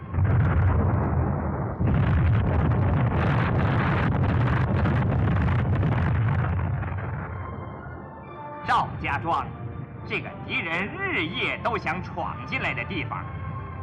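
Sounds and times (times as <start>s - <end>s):
landmine explosions: 0.0s - 8.0s
speech: 9.2s - 13.2s.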